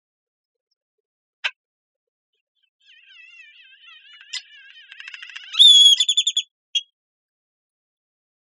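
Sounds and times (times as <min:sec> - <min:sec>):
great-tailed grackle whistling and calling: 0:02.8 - 0:06.9.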